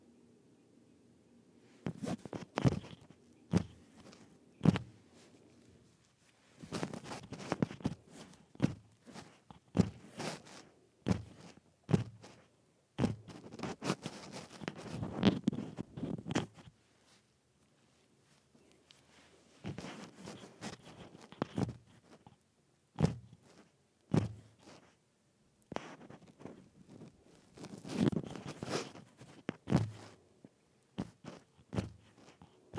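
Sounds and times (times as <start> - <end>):
rattling microphone handling noise: 1.9 - 5.0, 6.6 - 12.4, 13.0 - 16.7, 19.6 - 22.2, 23.0 - 24.8, 25.8 - 30.2, 31.0 - 32.7.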